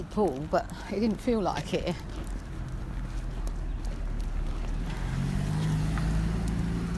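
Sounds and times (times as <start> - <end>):
speech: 0.2 - 2.3
car approaching and passing by: 1.8 - 6.9.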